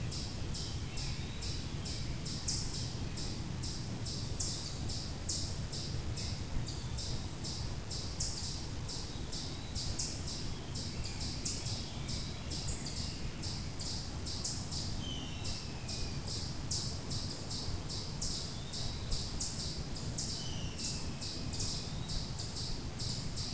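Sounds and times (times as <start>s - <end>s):
outdoor ambience: 0.0s - 23.5s.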